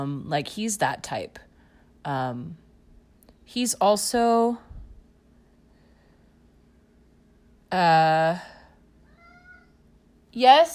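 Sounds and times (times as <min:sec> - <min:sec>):
speech: 0:00.0 - 0:02.6, 0:03.5 - 0:04.7, 0:07.7 - 0:08.5, 0:10.3 - 0:10.7
quiet hum: 0:00.0 - 0:10.7
cat meowing: 0:09.1 - 0:09.8.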